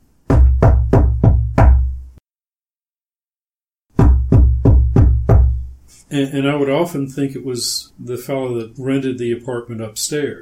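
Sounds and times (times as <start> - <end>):
loud knocking: 0.3 - 1.9, 3.9 - 5.6
speech: 6.1 - 10.4.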